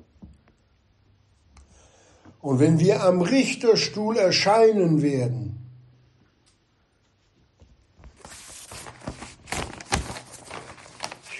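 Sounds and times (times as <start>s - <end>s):
speech: 2.4s - 5.6s
paper crinkling and rustling: 8.0s - 11.3s.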